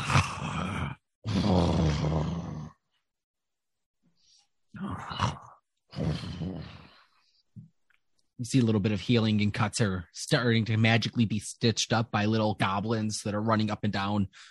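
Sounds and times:
voice imitating the very loud snoring of a sleeping dragon: 0.0s - 2.8s, 4.8s - 7.0s
speech: 8.4s - 14.4s.

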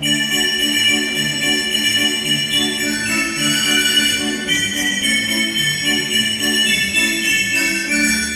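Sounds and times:
tuned sleigh bells in a large percussion instrument jingling: 0.0s - 8.3s.

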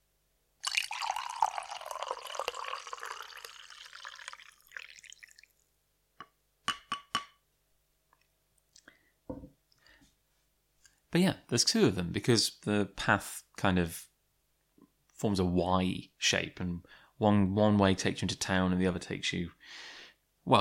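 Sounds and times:
coffee pouring into a cup: 0.6s - 5.5s
speech: 11.2s - 14.1s, 15.2s - 19.9s.

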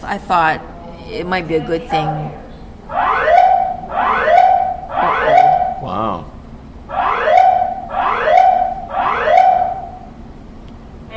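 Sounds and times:
speech: 0.0s - 3.1s
false alarm buzzing blasts: 1.6s - 10.3s
false alarm rising whoops: 1.9s - 6.2s, 6.9s - 10.1s.

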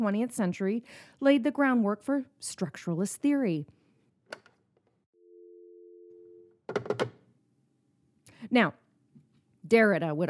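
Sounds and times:
speech: 0.0s - 3.8s, 8.5s - 8.8s, 9.7s - 10.2s
telephone dial tone: 5.2s - 6.6s.

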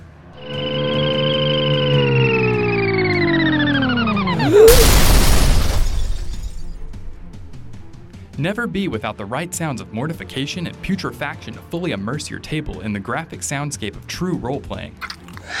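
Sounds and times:
bright harmonic synthetic tone sliding downward, magic missile spell sound effect: 0.4s - 4.6s
shattering crash of a magic missile spell sound effect: 4.4s - 8.1s
speech: 8.4s - 15.5s.

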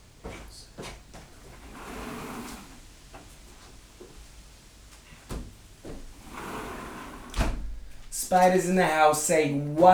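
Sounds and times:
door being shut: 7.3s - 7.8s
speech: 8.3s - 9.9s.

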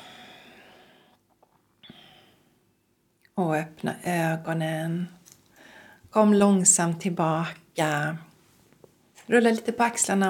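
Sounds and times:
soft breathy exhale during a guided meditation: 0.0s - 1.2s, 1.8s - 2.5s
speech: 3.4s - 5.2s, 6.1s - 8.3s, 9.3s - 10.2s.

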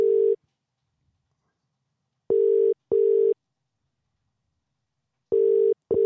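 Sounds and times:
phone ringback tone on an outgoing call over Bluetooth: 2.3s - 3.4s, 5.3s - 6.0s.

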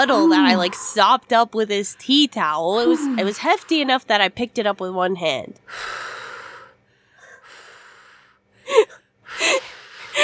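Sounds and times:
deep breathing to avoid vomiting: 0.0s - 1.2s, 2.0s - 4.0s, 5.7s - 10.2s
speech: 0.0s - 6.2s, 8.7s - 10.2s.

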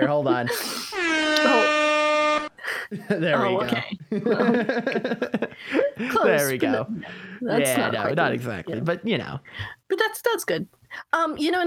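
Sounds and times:
speech: 0.0s - 1.6s, 2.9s - 11.6s
air horn blast sound effect: 1.0s - 2.6s
laughter: 2.8s - 7.2s.

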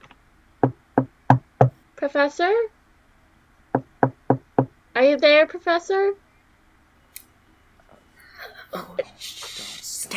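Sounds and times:
knocking on a door: 0.6s - 1.8s, 3.7s - 4.8s
speech: 2.0s - 2.8s, 5.0s - 6.2s.

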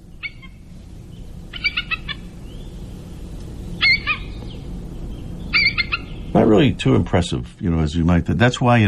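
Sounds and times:
bald eagle high thin chattering calls: 0.0s - 6.6s
steady low rumble: 0.0s - 8.8s
speech: 6.4s - 8.8s.

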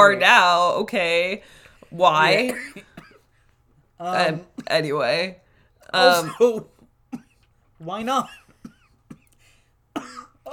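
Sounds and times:
speech: 0.0s - 2.9s, 4.0s - 6.7s, 7.8s - 8.4s
shallow coughs: 2.4s - 3.3s, 6.0s - 7.5s, 8.2s - 10.5s.

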